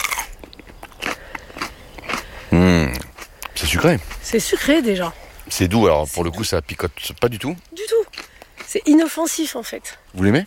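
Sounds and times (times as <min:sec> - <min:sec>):
crisp crunching bites into a fresh chili pepper: 0:00.0 - 0:02.2
speech: 0:03.7 - 0:07.7, 0:08.8 - 0:10.4.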